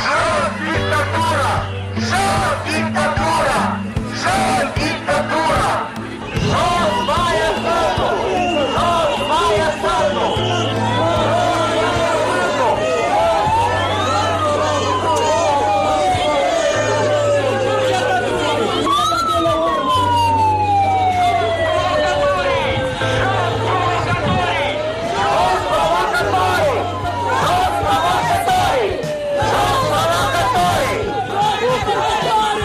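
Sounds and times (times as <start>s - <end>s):
protest crowd voices chattering and calling out in front of Parliament: 0.0s - 32.6s
sirens wailing: 0.0s - 32.6s.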